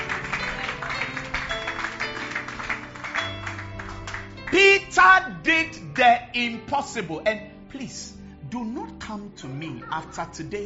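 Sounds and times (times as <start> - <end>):
audience clapping: 0.0 - 5.1
sustained musical tones: 0.0 - 6.4
speech: 4.5 - 10.6.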